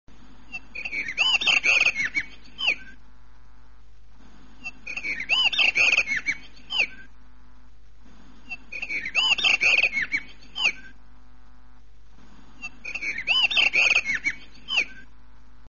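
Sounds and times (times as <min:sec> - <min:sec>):
blue rock thrush singing in the mountains: 0:00.5 - 0:03.0, 0:04.6 - 0:07.2, 0:08.5 - 0:11.0, 0:12.6 - 0:15.1.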